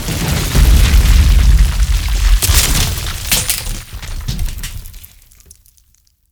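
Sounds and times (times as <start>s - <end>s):
building collapsing: 0.0s - 5.6s
explosions: 0.6s - 4.3s.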